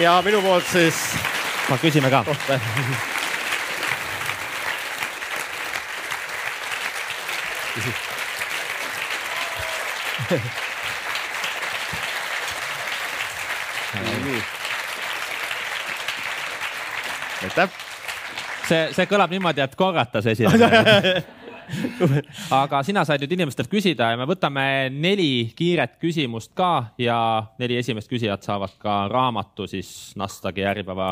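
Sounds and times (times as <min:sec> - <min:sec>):
speech: 0:00.0 - 0:03.1, 0:07.8 - 0:08.1, 0:10.2 - 0:10.6, 0:17.4 - 0:17.8, 0:18.7 - 0:31.0
audience applause after a talk: 0:00.0 - 0:19.7, 0:20.5 - 0:21.8
laughter: 0:02.0 - 0:03.2, 0:09.4 - 0:10.9, 0:13.9 - 0:14.5, 0:20.4 - 0:22.6.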